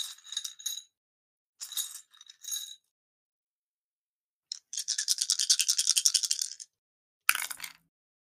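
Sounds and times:
twelve-sided dice rattling and clattering on a hard table: 4.5 - 6.7, 7.3 - 7.8.

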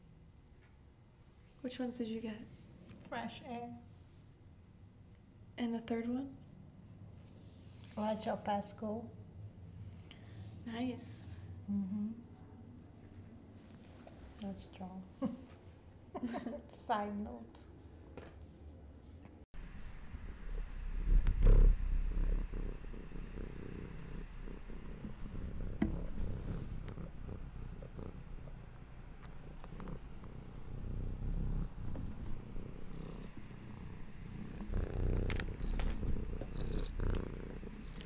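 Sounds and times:
speech: 1.6 - 3.9, 5.6 - 6.4, 8.0 - 9.2, 10.6 - 12.2, 14.4 - 15.6, 16.2 - 17.7
cat purring into the microphone: 19.7 - 38.0.

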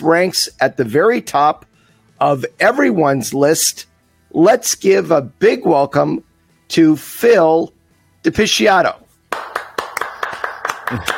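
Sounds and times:
speech: 0.0 - 9.0, 10.9 - 11.1
small audience's modest applause with steady hand claps: 9.3 - 11.1.

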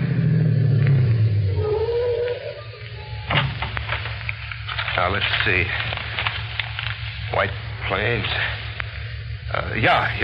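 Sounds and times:
car engine rumbling as the vehicle slows: 0.0 - 10.2
rattling noise: 2.6 - 10.2
speech: 5.0 - 5.9, 7.4 - 8.6, 9.5 - 10.2.

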